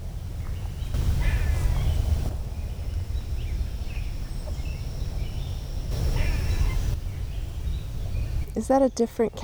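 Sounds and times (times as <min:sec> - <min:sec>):
eastern gray squirrel giving raspy chattering calls: 0:00.0 - 0:09.4
steady outdoor noise: 0:00.0 - 0:09.4
speech: 0:08.6 - 0:09.4.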